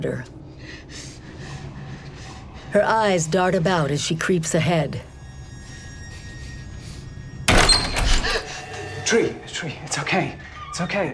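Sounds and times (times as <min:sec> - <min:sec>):
speech: 0:00.0 - 0:01.1, 0:02.7 - 0:05.1, 0:09.1 - 0:11.1
door thudding shut with heavy impact: 0:07.5 - 0:08.4.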